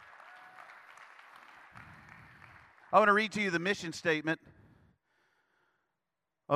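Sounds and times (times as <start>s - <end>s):
audience clapping: 0.0s - 3.6s
speech: 2.9s - 4.6s.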